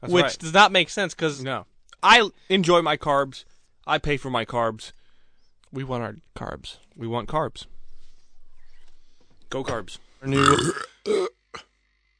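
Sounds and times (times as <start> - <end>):
speech: 0.0 - 5.0, 5.7 - 7.8, 9.5 - 11.7
loud burping, processed and distorted: 10.3 - 11.7.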